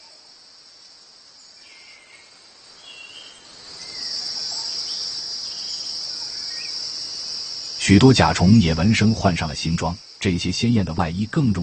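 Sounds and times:
male cicadas singing in warm sunshine in mating season: 3.6s - 11.6s
speech: 7.9s - 11.6s.

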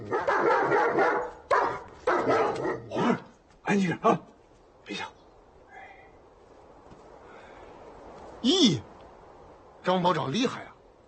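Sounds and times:
dog barking: 0.0s - 3.3s
speech: 3.7s - 4.3s, 4.9s - 5.2s, 8.4s - 8.9s, 9.8s - 10.7s.

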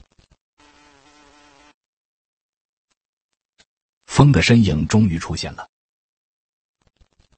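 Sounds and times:
bumblebee buzzing in flight: 0.6s - 1.8s
speech: 4.2s - 5.8s.

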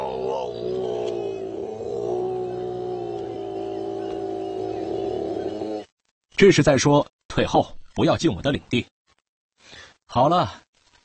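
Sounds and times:
male koala bellowing at night: 0.0s - 5.9s
speech: 6.4s - 8.9s, 10.1s - 10.6s.

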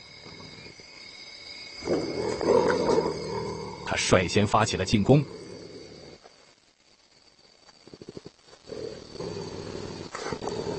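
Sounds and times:
African civet threatening growl: 1.8s - 6.3s, 7.9s - 10.7s
speech: 4.0s - 5.4s.

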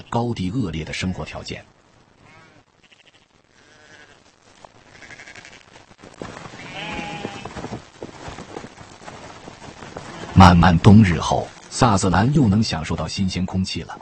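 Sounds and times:
speech: 0.1s - 1.8s, 10.4s - 14.0s
newborn lambs bleating in the Sutherland highlands: 2.2s - 5.8s, 6.5s - 7.6s
rustling movement: 2.8s - 12.9s.

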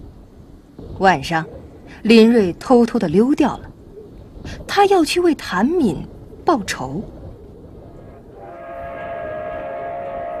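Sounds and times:
speech: 1.0s - 3.7s, 4.4s - 7.2s
express train roaring through a county-town station at night: 7.9s - 10.3s.

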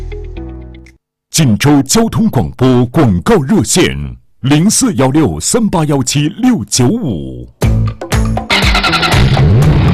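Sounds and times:
speech: 1.4s - 8.1s
car engine starting and revving up in a radio jingle: 8.5s - 9.9s.

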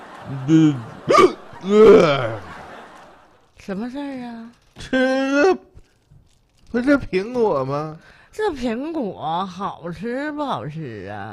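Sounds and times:
laughter: 0.0s - 3.5s
speech: 0.3s - 2.3s, 3.7s - 5.6s, 6.7s - 11.3s
man making exaggerated hiccup sounds: 0.4s - 2.4s, 4.9s - 5.8s.

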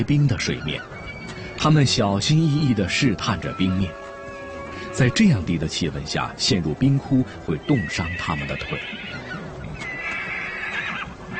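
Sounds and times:
speech: 0.0s - 1.0s, 1.6s - 4.0s, 5.0s - 9.2s
pony whinnying beside a frozen stream: 0.4s - 1.7s, 7.6s - 11.3s.

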